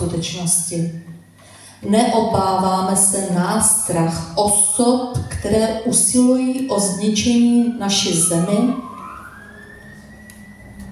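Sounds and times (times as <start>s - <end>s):
speech: 0.1s - 1.1s, 1.8s - 8.9s
faint fire engine siren: 6.5s - 10.9s.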